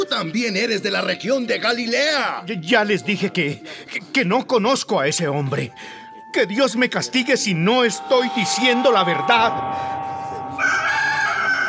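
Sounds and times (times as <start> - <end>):
speech: 0.1 - 10.1
rooster crowing: 10.6 - 11.6.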